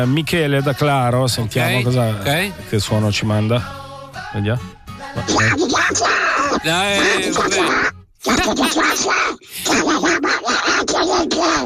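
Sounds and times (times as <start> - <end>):
speech: 0.0 - 11.6
dubbing voice actor imitating a cartoon duck's quacking speech: 5.2 - 11.6.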